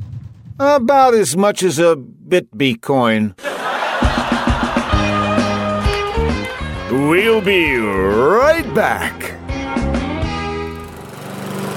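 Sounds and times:
speech: 0.6s - 3.5s, 7.0s - 9.3s
laughter: 3.4s - 6.3s
lawn mower engine running as the lawn is mowed: 10.2s - 11.7s.

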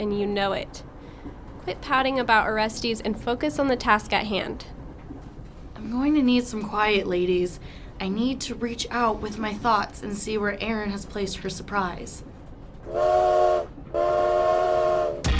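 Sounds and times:
speech: 0.0s - 4.8s, 5.8s - 12.3s, 12.9s - 13.7s
train whistle blasts: 12.9s - 15.3s.

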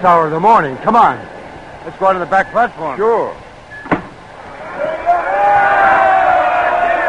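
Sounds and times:
speech: 0.0s - 3.4s
sharp knock: 3.8s - 4.2s
large crowd of students cheering and yelling to welcome a returning team: 4.4s - 7.0s.

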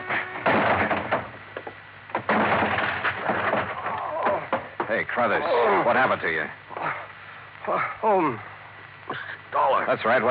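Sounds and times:
locked office door being forced open with heavy thuds, rattling and scraping: 0.1s - 1.4s, 2.2s - 4.7s
speech: 4.9s - 6.6s, 7.7s - 8.5s, 9.1s - 10.3s.

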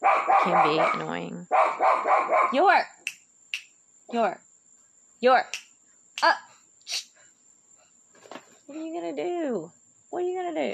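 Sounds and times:
dog barking at a fence: 0.0s - 2.7s
speech: 0.4s - 3.0s, 4.1s - 4.5s, 5.2s - 7.0s, 8.7s - 10.7s.

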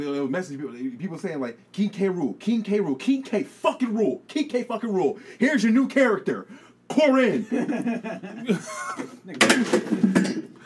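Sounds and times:
speech: 0.0s - 10.1s
laughter: 7.3s - 9.4s
chair cracking and breaking apart under someone: 9.4s - 10.5s.

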